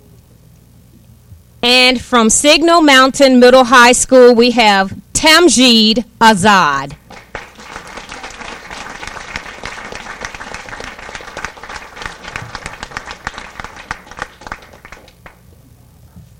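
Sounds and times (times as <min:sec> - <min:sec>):
speech: 0:01.6 - 0:07.0
large audience applauding for finalists: 0:07.0 - 0:15.4.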